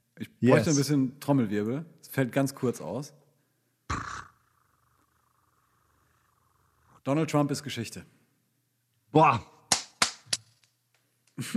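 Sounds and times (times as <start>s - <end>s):
speech: 0.4s - 3.2s, 7.1s - 8.2s, 9.1s - 9.5s
hand clapping: 9.7s - 10.7s.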